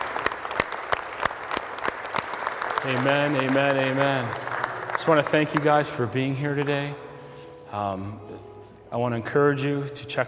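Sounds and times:
church congregation clapping in a steady rhythm: 0.0 - 7.0
speech: 2.8 - 7.0, 7.7 - 10.2.

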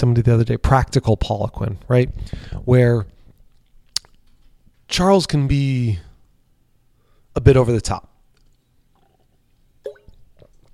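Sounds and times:
speech: 0.0 - 3.2, 4.9 - 6.1, 7.4 - 8.1
person sipping a drink of water: 8.9 - 10.7.

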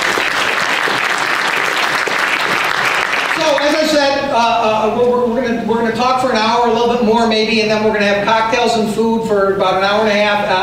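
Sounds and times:
crowd clapping: 0.0 - 4.1
speech: 3.4 - 10.6.

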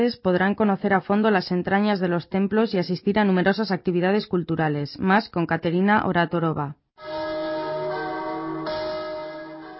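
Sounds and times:
speech: 0.0 - 7.2
church bells ringing: 7.0 - 9.7.

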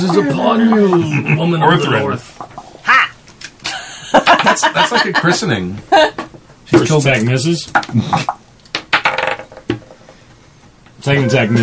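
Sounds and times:
laughter: 0.0 - 2.2, 3.6 - 6.2
speech: 0.0 - 2.6, 4.4 - 8.4, 11.0 - 11.6
dice rolling on a table: 7.7 - 10.2.

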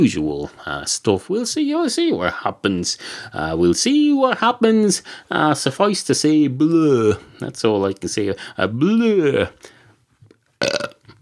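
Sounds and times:
speech: 0.0 - 9.7
person belching loudly: 10.6 - 11.2.

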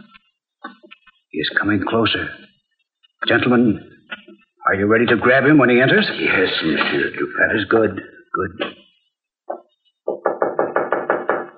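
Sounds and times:
speech: 1.4 - 2.4, 3.2 - 3.9, 4.7 - 8.8
knocking on a door: 10.1 - 11.5.

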